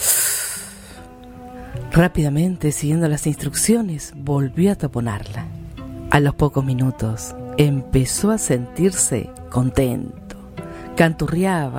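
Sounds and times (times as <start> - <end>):
strong sniff inhaling from an opened bottle: 0.0 - 1.8
speech: 2.0 - 10.2, 11.0 - 11.7.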